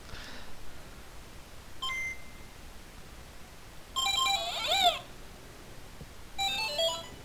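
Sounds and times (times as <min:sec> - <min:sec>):
soft hiss: 0:00.0 - 0:07.2
bright buzzy Game Boy chiptune beeps: 0:04.0 - 0:05.1, 0:06.4 - 0:07.2.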